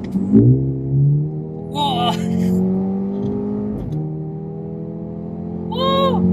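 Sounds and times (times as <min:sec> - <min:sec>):
four-cylinder car engine revving with open exhaust: 0:00.0 - 0:06.3
people talking: 0:01.8 - 0:02.6, 0:05.7 - 0:06.3.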